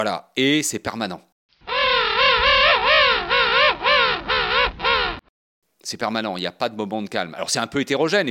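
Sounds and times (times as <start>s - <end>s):
speech: 0.0s - 1.3s, 5.8s - 8.2s
penguin braying honks: 1.7s - 5.2s.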